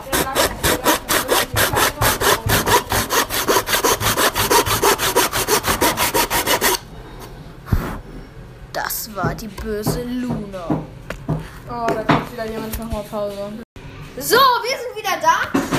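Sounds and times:
hand saw cutting through wood: 0:00.0 - 0:06.8
speech: 0:09.4 - 0:10.9, 0:11.7 - 0:13.6, 0:14.2 - 0:15.6.

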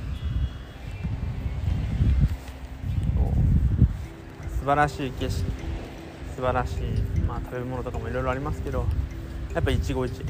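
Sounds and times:
heavy wind rumble across the microphone: 0:00.0 - 0:10.2
ocean waves breaking on shore: 0:04.1 - 0:09.6
speech: 0:04.7 - 0:05.6, 0:06.4 - 0:10.2.

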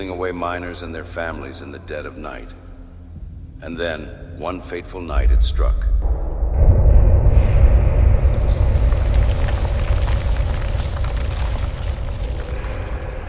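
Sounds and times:
speech: 0:00.0 - 0:02.7, 0:03.6 - 0:06.3
deep powerful explosion in a mine with heavy rumble: 0:05.1 - 0:13.2
crackling debris from a mine explosion: 0:07.6 - 0:13.2.

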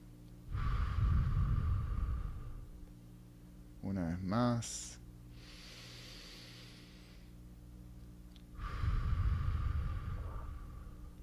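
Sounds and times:
deep breath close to a microphone: 0:00.5 - 0:02.8, 0:05.3 - 0:07.4, 0:08.5 - 0:11.2
speech: 0:03.9 - 0:05.0.

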